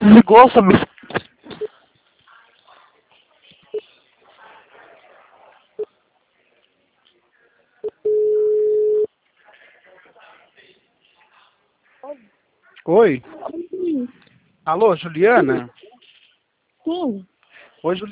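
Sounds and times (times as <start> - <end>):
speech: 0.2 - 0.9, 13.0 - 15.8, 17.0 - 18.1
telephone tones after a dropped call: 7.8 - 9.1.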